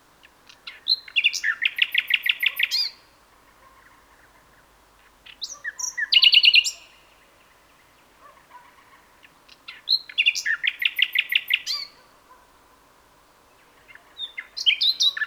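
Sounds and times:
common nightingale Luscinia megarhynchos song: 0.0 - 12.0, 13.4 - 15.2.

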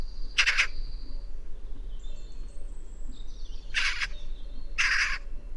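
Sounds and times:
Eurasian magpie giving harsh rasping chack calls: 0.4 - 0.7, 3.7 - 4.1, 4.8 - 5.2.

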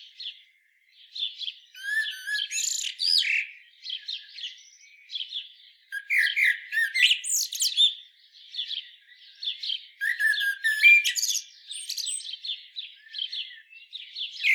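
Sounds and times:
common blackbird Turdus merula singing: 0.0 - 14.5.

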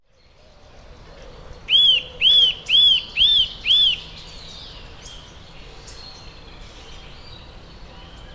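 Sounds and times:
Eurasian nuthatch Sitta europaea giving piping whistles: 1.7 - 4.1.

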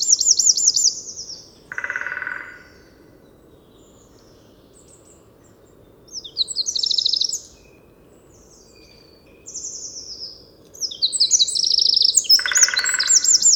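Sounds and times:
Eurasian wren Troglodytes troglodytes giving high rapid trilled notes: 0.0 - 3.0, 6.1 - 7.6, 10.8 - 13.5.

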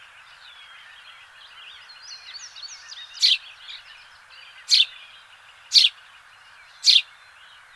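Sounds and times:
birds twittering: 0.0 - 7.7
house sparrow Passer domesticus chirping: 1.9 - 7.2.

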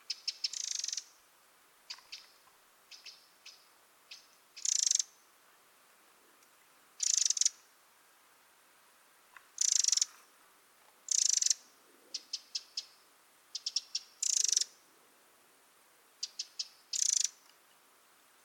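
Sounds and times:
Eurasian wren Troglodytes troglodytes giving dry buzzy rattling churrs: 0.1 - 1.1, 4.1 - 5.1, 7.0 - 7.5, 9.6 - 10.1, 11.1 - 11.6, 13.6 - 14.7, 16.2 - 17.3
Eurasian wren sharp ticks: 0.1 - 1.1, 1.9 - 5.1, 7.0 - 7.6, 9.6 - 10.1, 11.1 - 11.6, 13.6 - 14.7, 16.2 - 17.5.

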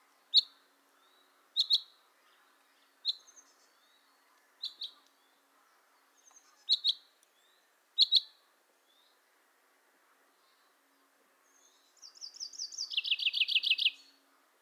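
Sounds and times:
common chaffinch Fringilla coelebs calls and song: 0.2 - 5.4, 6.0 - 9.2, 11.5 - 14.2.

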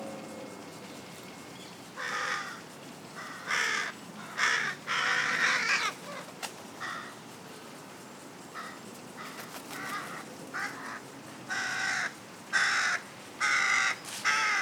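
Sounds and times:
Carrion crow Corvus corone cawing: 2.0 - 2.6, 3.2 - 6.0, 8.6 - 14.6.

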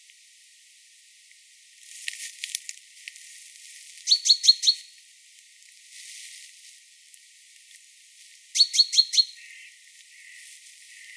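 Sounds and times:
light background rustle: 1.8 - 4.1, 5.3 - 8.4
great tit Parus major calls with sharp ringing notes: 4.0 - 4.9, 8.6 - 11.1.

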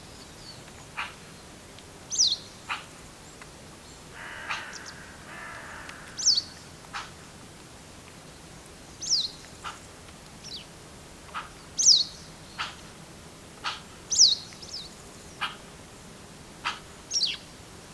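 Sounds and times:
faint background noise: 0.0 - 17.9
Eurasian magpie Pica pica calls: 4.2 - 7.1.

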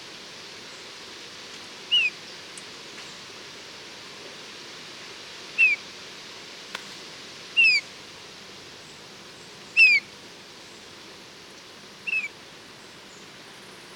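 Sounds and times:
steady hiss: 0.0 - 13.9
Eurasian bullfinch Pyrrhula pyrrhula giving soft piping descending whistles: 1.9 - 2.1, 5.6 - 5.8, 7.6 - 7.8, 9.8 - 10.0, 12.0 - 12.3.

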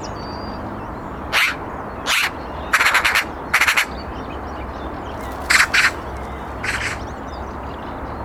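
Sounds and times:
Eurasian magpie Pica pica uttering harsh rattling chacks: 1.3 - 4.4, 5.0 - 7.2.

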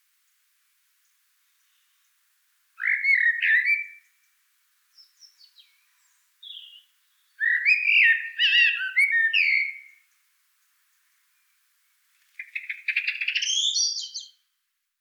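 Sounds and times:
common blackbird Turdus merula singing: 2.8 - 4.1, 5.0 - 10.0, 12.4 - 14.4.

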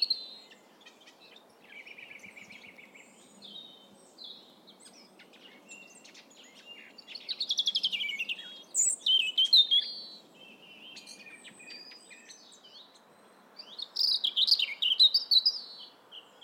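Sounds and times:
European robin Erithacus rubecula singing: 0.0 - 16.4.

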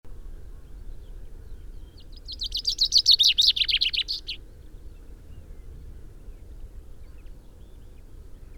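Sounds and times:
common chaffinch Fringilla coelebs song: 2.2 - 4.4.

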